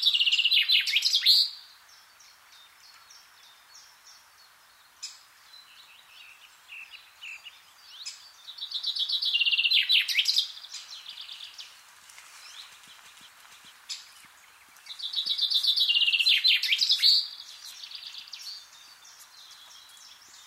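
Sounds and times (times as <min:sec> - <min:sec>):
common chaffinch song, fast trill dropping in pitch with sharp terminal flourish: 0:00.0 - 0:20.4.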